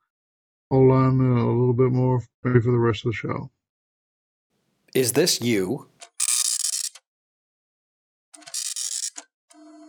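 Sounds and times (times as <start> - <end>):
speech: 0.7 - 3.6, 4.9 - 6.0
slow serial printer head rasping across the page: 8.3 - 9.2
steady whining mechanical tone of a printer: 8.3 - 9.2.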